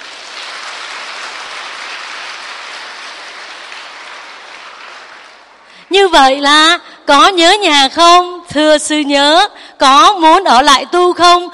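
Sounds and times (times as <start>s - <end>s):
crowd of young retreat participants applauding: 0.0s - 5.9s
speech: 5.9s - 11.5s.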